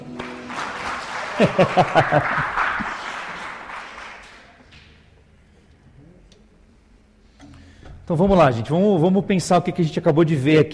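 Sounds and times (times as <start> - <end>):
crowd applauding: 0.0 - 5.1
laughter: 0.6 - 4.6
speech: 1.4 - 2.6, 8.1 - 10.7.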